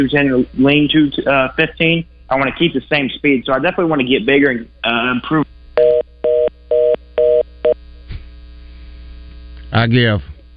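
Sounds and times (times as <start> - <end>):
speech: 0.0 - 5.5, 9.8 - 10.4
telephone line tone pulses: 5.8 - 7.8.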